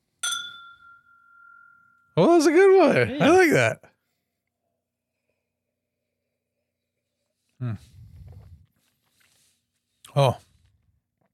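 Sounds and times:
clear ringing tone of glasses: 0:00.2 - 0:02.2
glasses clinking in a toast: 0:00.2 - 0:02.2
speech: 0:02.2 - 0:03.9, 0:07.6 - 0:08.0, 0:10.2 - 0:10.4.

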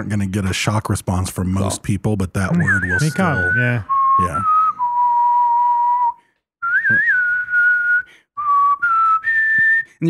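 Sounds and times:
speech: 0:00.0 - 0:04.6
lone showdown-style whistled melody: 0:02.6 - 0:10.0.

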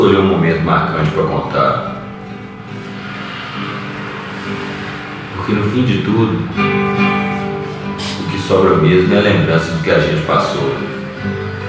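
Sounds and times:
car tires screeching: 0:00.0 - 0:11.6
car engine revving: 0:01.0 - 0:09.8
speech: 0:05.5 - 0:06.8, 0:08.5 - 0:11.4.

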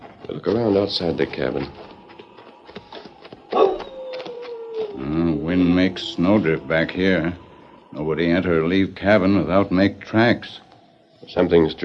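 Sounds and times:
speech: 0:00.3 - 0:01.9, 0:05.6 - 0:10.6, 0:11.2 - 0:11.8
dog whining: 0:03.5 - 0:06.4.

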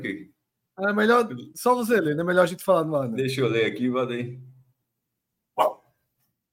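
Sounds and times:
speech: 0:00.0 - 0:04.5, 0:05.6 - 0:05.8
dog barking: 0:05.6 - 0:05.9.

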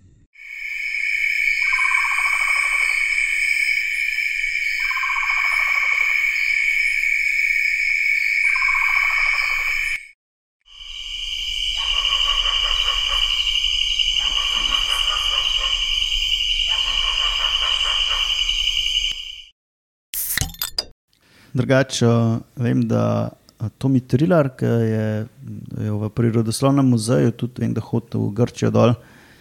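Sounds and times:
newly described hybrid cicada species buzzing with rasping bark-like bursts: 0:00.4 - 0:10.1, 0:10.7 - 0:19.5
speech: 0:21.7 - 0:29.2.

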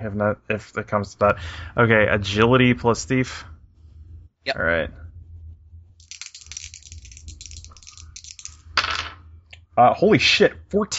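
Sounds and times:
speech: 0:00.0 - 0:03.5, 0:04.4 - 0:05.0, 0:09.8 - 0:10.9
small d4 and d6 dice clattering across a hard surface: 0:06.0 - 0:09.1.

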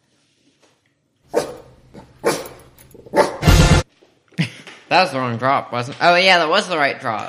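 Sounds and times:
dog barking sound effect: 0:01.3 - 0:03.5
speech: 0:04.9 - 0:07.2.

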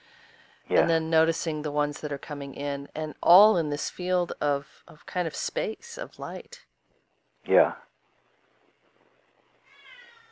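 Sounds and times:
speech: 0:00.7 - 0:06.7, 0:07.4 - 0:07.9
cat meowing: 0:09.6 - 0:10.3.

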